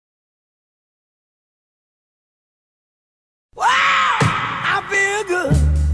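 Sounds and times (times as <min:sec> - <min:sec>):
person screaming: 0:03.6 - 0:05.6
person yelling and groaning: 0:03.6 - 0:05.8.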